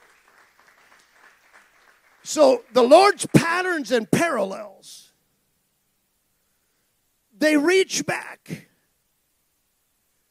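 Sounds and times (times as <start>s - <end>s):
audience applause: 0.0s - 3.2s
speech: 2.2s - 5.0s, 7.4s - 8.7s.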